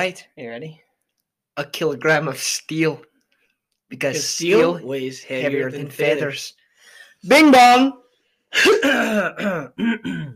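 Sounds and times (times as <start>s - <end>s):
speech: 0.0s - 0.8s, 1.6s - 3.1s, 3.9s - 6.6s, 7.2s - 10.3s
throat clearing: 8.6s - 10.3s.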